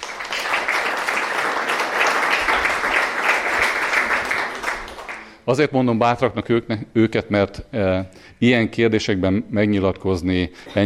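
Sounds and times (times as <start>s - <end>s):
crowd applauding: 0.0s - 5.4s
speech: 5.5s - 10.8s.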